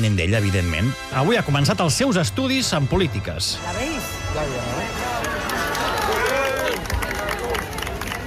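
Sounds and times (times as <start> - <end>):
speech: 0.0 - 5.3
overlapping voices and chatter of a dense crowd: 3.6 - 8.2
lively crowd clapping at a university arrival: 4.8 - 8.2.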